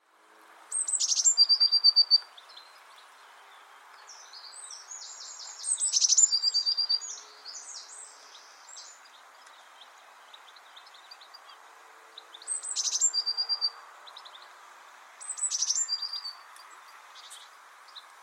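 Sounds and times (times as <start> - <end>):
Cyanistes caeruleus blue tit: 0.7 - 11.6, 12.2 - 14.6, 15.2 - 18.1.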